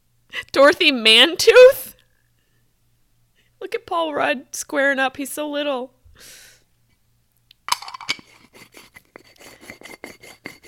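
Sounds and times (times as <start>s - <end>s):
speech: 0.6s - 1.9s, 3.7s - 6.4s
herb grinder grinding cannabis: 7.7s - 10.6s.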